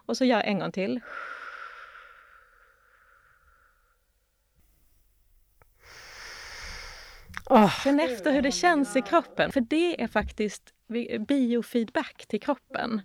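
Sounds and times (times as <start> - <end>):
speech: 0.1 - 1.3, 7.5 - 13.0
slow long exhalation during a breathing exercise: 1.0 - 4.2, 5.8 - 8.0.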